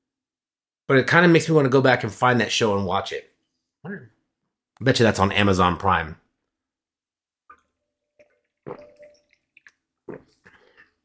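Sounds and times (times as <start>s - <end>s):
speech: 0.9s - 4.1s, 4.8s - 6.2s
wet sips and swallows of water: 7.4s - 11.0s.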